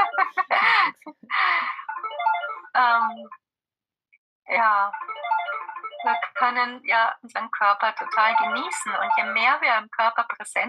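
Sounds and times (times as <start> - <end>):
phone ringtone short electronic melody: 0.0 - 0.4, 1.6 - 3.4, 4.9 - 7.0, 7.9 - 9.5
laughter: 0.0 - 1.8
speech: 2.8 - 3.4, 4.6 - 5.3, 6.0 - 10.6.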